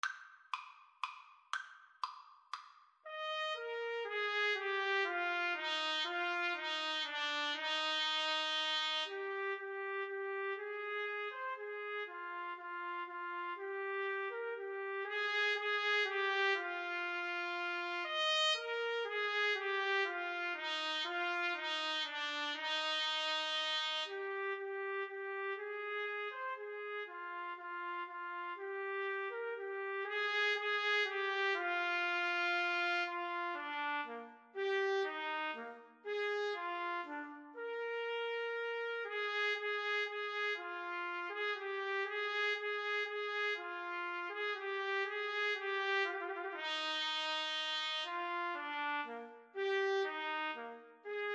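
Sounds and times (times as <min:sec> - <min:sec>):
trumpet and trombone duet playing a minuet: 0:03.1 - 0:51.3.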